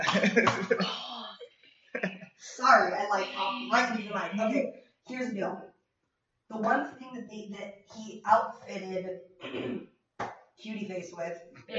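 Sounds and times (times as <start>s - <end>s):
person coughing: 0.0s - 0.8s, 9.4s - 9.8s
laughter: 0.0s - 1.0s, 2.0s - 2.2s, 3.1s - 4.6s
speech: 0.0s - 1.0s, 2.7s - 5.7s, 6.5s - 11.7s.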